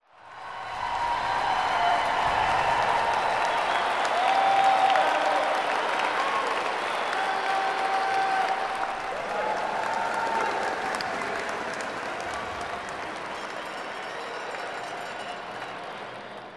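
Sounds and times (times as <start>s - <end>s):
medium crowd of spectators: 0.0s - 16.5s.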